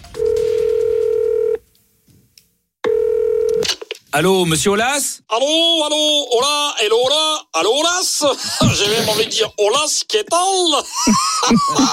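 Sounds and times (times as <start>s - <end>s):
telephone line beep as a call is placed: 0.2s - 1.6s, 2.9s - 3.6s
speech: 4.1s - 11.9s
laughter: 10.8s - 11.9s.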